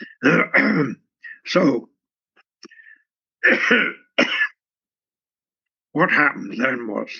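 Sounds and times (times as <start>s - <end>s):
person clearing throat: 0.0s - 1.1s, 3.4s - 4.6s
speech: 0.0s - 1.9s, 3.4s - 4.4s, 6.0s - 7.1s.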